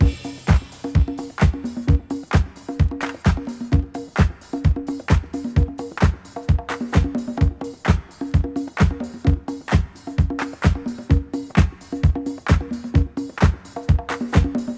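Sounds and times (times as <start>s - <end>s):
modern breakbeat in C key: 0.0s - 14.7s.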